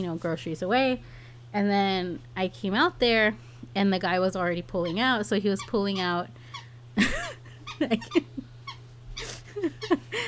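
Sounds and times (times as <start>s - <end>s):
speech: 0.0s - 6.4s, 7.0s - 8.5s, 9.6s - 10.2s
low steady hum: 0.0s - 10.2s
dog's squeak toy squeaking as the dog plays with it: 4.8s - 6.7s, 7.6s - 8.8s.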